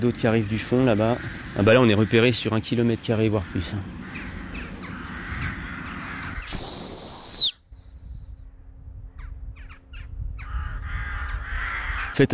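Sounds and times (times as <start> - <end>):
speech: 0.0 - 4.3, 12.2 - 12.3
large flock of jackdaws giving harsh alarm calls at a bird of prey: 0.4 - 2.4, 3.4 - 7.0, 9.1 - 12.2
loud sharp human whistle sliding downward: 6.5 - 7.6.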